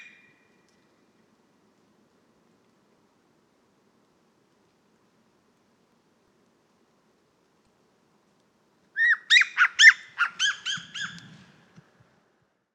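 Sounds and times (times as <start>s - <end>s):
Siberian jay calling: 9.0s - 11.4s.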